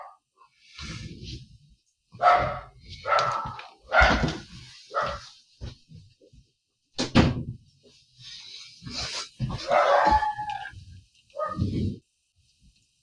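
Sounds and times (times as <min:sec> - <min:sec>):
dogs barking and yelping excitedly at a passing snowplow: 0:02.2 - 0:05.2, 0:09.5 - 0:11.8.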